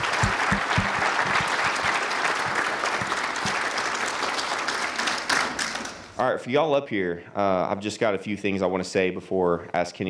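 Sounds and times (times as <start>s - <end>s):
crowd applauding for a graduating class: 0.0s - 6.2s
speech: 6.2s - 10.0s.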